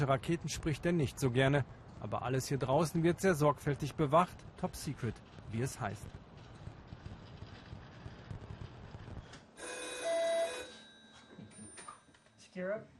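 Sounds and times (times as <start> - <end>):
speech: 0.0 - 6.2, 12.6 - 12.9
low wind-like rumble: 0.0 - 9.4
red hotline telephone ringing in a training centre: 9.6 - 12.4.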